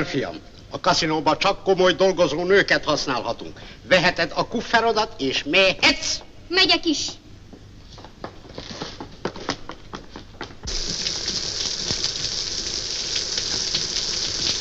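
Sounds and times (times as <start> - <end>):
speech: 0.0 - 7.2
heavy rain downpour: 10.7 - 14.6
water drips and patter: 10.7 - 14.6.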